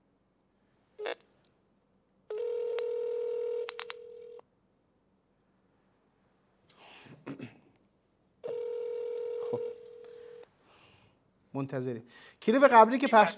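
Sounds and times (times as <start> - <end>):
telephone ringback tone while a call is placed: 2.3 - 4.4, 8.4 - 10.4
speech: 11.6 - 13.3.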